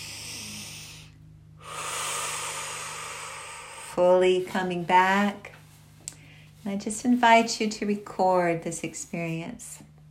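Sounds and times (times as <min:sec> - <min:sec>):
deep breath drawn slowly through the airway: 0:00.0 - 0:04.0
speech: 0:04.0 - 0:05.5, 0:06.6 - 0:09.9.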